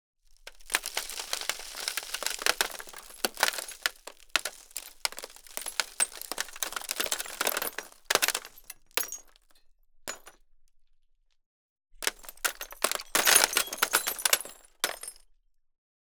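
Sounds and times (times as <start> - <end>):
glass and metal debris shards trickling: 0.6 - 9.3, 12.1 - 15.1.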